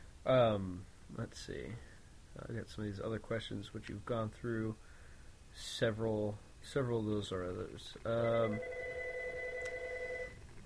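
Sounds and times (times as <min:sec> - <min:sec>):
speech: 0:00.2 - 0:04.9, 0:05.6 - 0:08.8
telephone ringing with a steady electronic tone: 0:08.2 - 0:10.4.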